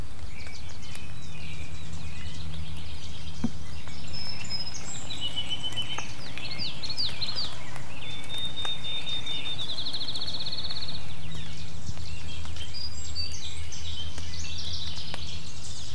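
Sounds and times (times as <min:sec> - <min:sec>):
many wild birds singing and calling in the morning: 0:00.0 - 0:15.9
low steady outdoor rumble: 0:00.7 - 0:12.7.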